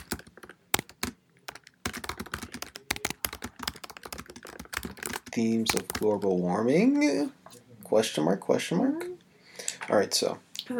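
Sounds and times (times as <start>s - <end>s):
typing notes on a computer keyboard: 0.0s - 6.2s
speech: 5.4s - 9.1s, 9.9s - 10.7s.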